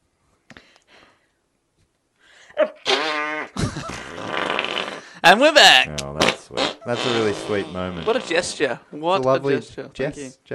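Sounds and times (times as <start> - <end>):
buzzy raspy fart sound effect: 2.8 - 5.1, 6.0 - 8.8
speech: 5.3 - 10.5.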